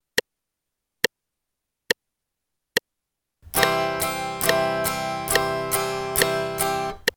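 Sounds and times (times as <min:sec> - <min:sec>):
guitar upstrokes and downstrokes on C: 0:03.5 - 0:07.1.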